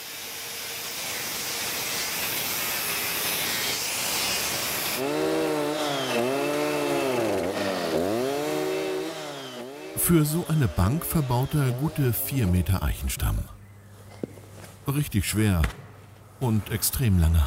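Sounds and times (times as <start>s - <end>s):
chainsaw cutting through a thick oak log for a bench: 0.0s - 12.8s
speech: 10.1s - 13.6s, 14.9s - 15.8s, 16.4s - 17.4s.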